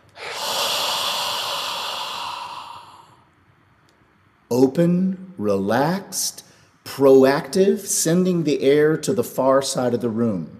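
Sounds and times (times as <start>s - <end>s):
person drawing a long full breath in and out: 0.0s - 3.3s
speech: 4.5s - 6.4s, 7.0s - 10.5s.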